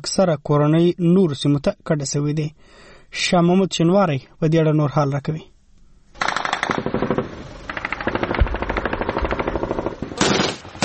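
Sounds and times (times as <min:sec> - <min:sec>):
speech: 0:00.0 - 0:05.5
light and heavy automatic gunfire in a battle in Kot district: 0:06.2 - 0:10.8.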